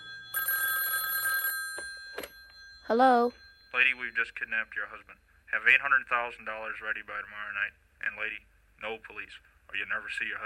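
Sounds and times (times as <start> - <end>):
telephone ringing with electronic bell tones: 0.0 - 5.0
speech: 2.9 - 10.4.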